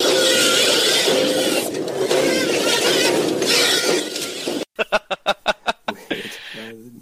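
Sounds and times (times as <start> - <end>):
harsh robotic screech with squealing tone: 0.0 - 4.6
laughter: 4.8 - 6.5.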